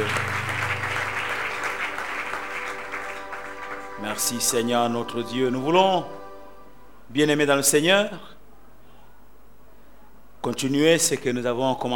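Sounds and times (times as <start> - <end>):
church congregation applauding during a worship service: 0.0 - 6.1
speech: 4.1 - 6.2, 7.1 - 8.3, 10.4 - 11.9.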